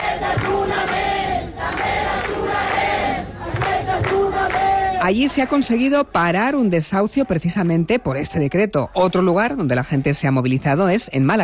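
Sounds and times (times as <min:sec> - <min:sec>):
crowd shouting and chanting at a protest encampment in Barcelona: 0:00.0 - 0:05.7, 0:07.0 - 0:10.4
speech: 0:05.0 - 0:11.4.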